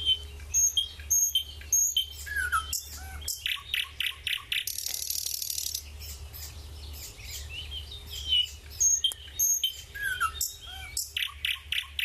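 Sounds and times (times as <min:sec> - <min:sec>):
low hum: 0:00.0 - 0:12.0
nightingale singing: 0:00.0 - 0:12.0.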